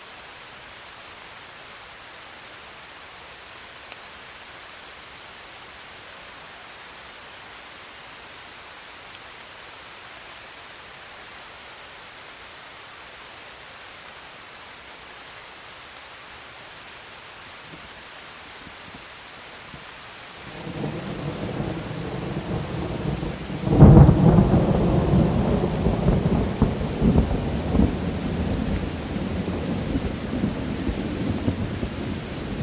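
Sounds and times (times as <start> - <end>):
rain in the Alps: 0.0 - 32.6
thunderstorm in the Alps: 20.5 - 32.6.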